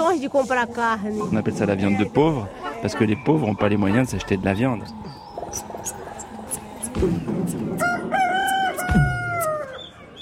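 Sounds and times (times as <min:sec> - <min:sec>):
speech: 0:00.0 - 0:05.7, 0:07.0 - 0:08.2
hens clucking: 0:00.6 - 0:09.8
rooster crowing: 0:07.8 - 0:09.8.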